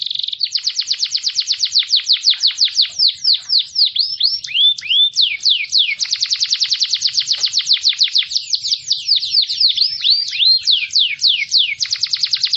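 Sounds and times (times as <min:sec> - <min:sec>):
canary song: 0:00.0 - 0:12.5.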